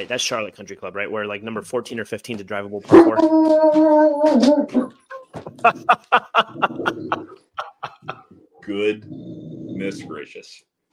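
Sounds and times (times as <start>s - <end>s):
speech: 0.0s - 7.4s, 8.7s - 10.7s
dog howling with a drawn-out whine: 2.9s - 5.0s
laughter: 5.4s - 8.3s.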